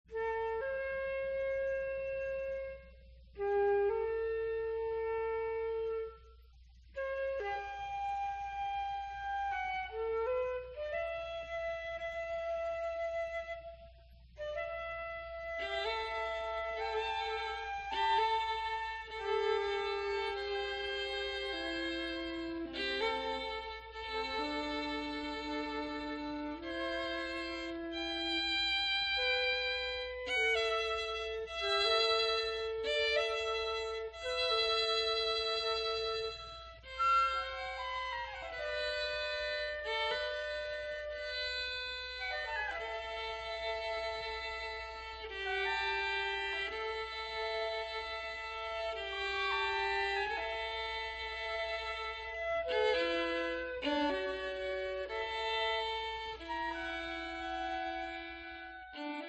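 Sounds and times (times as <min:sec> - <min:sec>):
flute: 0:00.0 - 0:59.2
violin: 0:00.0 - 0:59.2.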